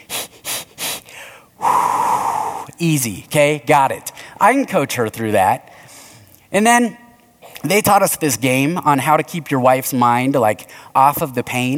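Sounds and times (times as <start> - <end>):
loud drawn-out blowing breath with a hum of voice: 0.0 - 2.8, 5.7 - 6.3, 10.7 - 11.0
quick sharp breaths of patterned labor breathing: 0.0 - 2.8, 4.1 - 4.4, 5.6 - 6.5, 10.7 - 11.0
softer trailing exhale: 0.0 - 2.8, 5.7 - 6.4
speech: 2.8 - 5.7, 6.5 - 7.0, 7.6 - 11.7.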